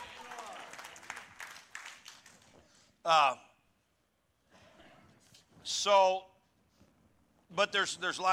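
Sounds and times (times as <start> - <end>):
crowd applauding: 0.0 - 2.5
speech: 3.1 - 3.5, 5.6 - 6.3, 7.5 - 8.3.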